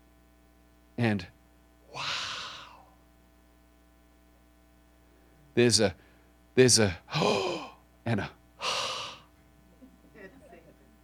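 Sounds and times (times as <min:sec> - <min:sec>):
speech: 0:01.0 - 0:01.4, 0:05.6 - 0:06.0, 0:06.6 - 0:08.9
person breathing in and out: 0:01.9 - 0:02.9, 0:07.1 - 0:07.8, 0:08.6 - 0:09.3.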